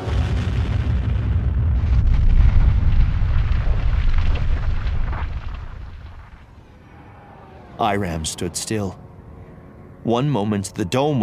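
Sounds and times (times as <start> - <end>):
electrostatic shield towers detonating in deep rumbling blasts: 0.0 - 6.6
speech: 7.8 - 9.0, 10.0 - 11.2.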